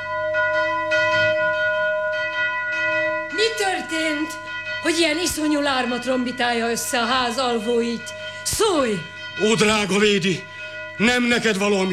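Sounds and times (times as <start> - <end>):
large bell clanging with a sustained humming tone: 0.0 - 11.9
speech: 3.6 - 11.9.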